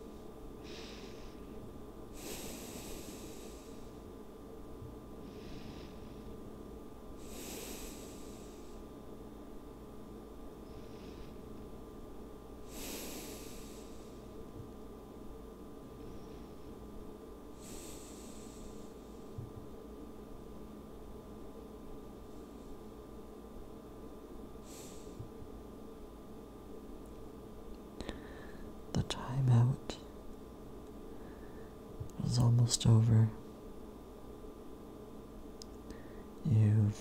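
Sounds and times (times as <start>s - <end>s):
slow deep breathing: 0.0s - 4.1s, 5.1s - 6.5s, 7.1s - 8.9s, 10.6s - 11.6s, 12.6s - 14.5s, 15.8s - 16.8s, 17.5s - 19.4s, 24.6s - 25.4s, 28.0s - 28.8s, 31.0s - 32.0s, 35.8s - 36.4s
low constant hum: 0.0s - 36.9s
speech: 32.4s - 33.4s.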